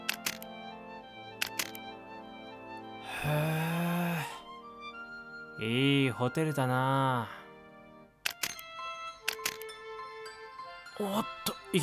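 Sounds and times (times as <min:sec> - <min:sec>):
camera shutter clicks as a photo is taken: 0:00.0 - 0:00.6, 0:01.4 - 0:01.9, 0:08.2 - 0:09.7
steady tonal background: 0:00.0 - 0:11.8
speech: 0:03.2 - 0:03.6, 0:05.6 - 0:07.4, 0:11.0 - 0:11.8.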